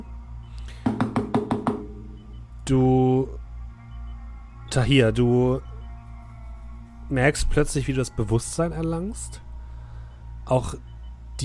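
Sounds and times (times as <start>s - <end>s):
faint steady hum: 0.0s - 11.4s
fingers knocking on a glass pane: 0.8s - 2.3s
speech: 2.7s - 3.4s, 4.7s - 5.7s, 7.1s - 9.4s, 10.5s - 11.4s.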